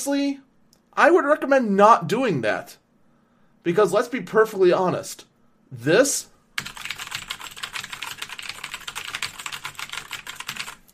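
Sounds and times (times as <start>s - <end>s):
speech: 0.0s - 2.8s, 3.6s - 6.9s
typing on a clicky mechanical keyboard: 6.6s - 10.9s.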